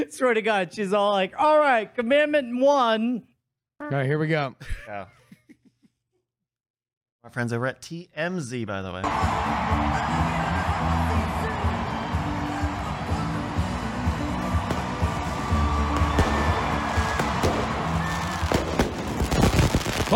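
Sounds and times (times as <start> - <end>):
speech: 0.0 - 5.2, 7.2 - 10.2
crowd of people shouting and cheering: 9.0 - 20.1
dense noisy crowd: 9.0 - 20.1
whistling fireworks streaks rising overhead: 15.0 - 20.1
fireworks cracking and popping: 16.0 - 20.1.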